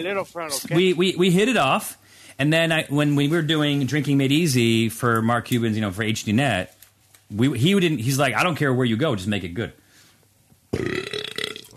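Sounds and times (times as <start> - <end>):
speech: 0.0 - 9.8, 10.7 - 11.0
loud burp: 10.7 - 11.7.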